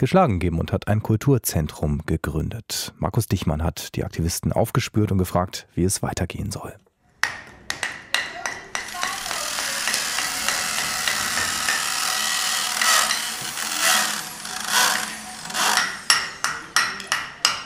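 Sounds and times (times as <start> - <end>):
speech: 0.0 - 6.8
hammer blows on a building site: 7.2 - 17.6
power drill whining on a building site: 8.8 - 16.1.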